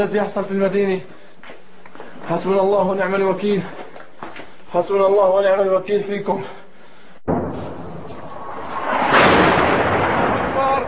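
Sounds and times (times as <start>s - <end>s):
speech: 0.0s - 1.2s, 2.3s - 3.8s, 4.7s - 6.6s
dense sustained roaring rumble of heavy shelling on a residential neighbourhood: 7.2s - 10.8s
loud blast of heavy shelling on a residential neighbourhood: 7.2s - 10.8s.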